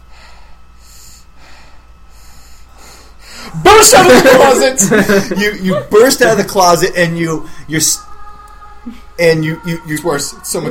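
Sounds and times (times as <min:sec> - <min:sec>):
heavy rasping breathing in the dark: 0:00.0 - 0:03.6
laughter: 0:03.6 - 0:06.6
speech: 0:03.6 - 0:08.0, 0:08.9 - 0:10.7.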